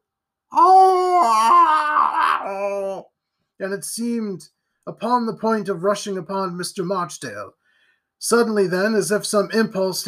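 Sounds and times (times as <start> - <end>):
voice imitating a monstrous howl: 0.5 - 3.0
speech: 2.5 - 7.6, 8.2 - 10.0.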